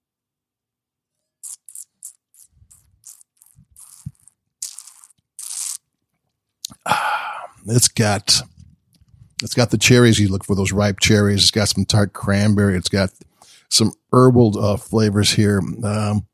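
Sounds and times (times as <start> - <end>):
person sipping and slurping Oregon Pinot Noir red wine: 1.4 - 5.8
speech: 7.7 - 8.5, 9.4 - 16.3.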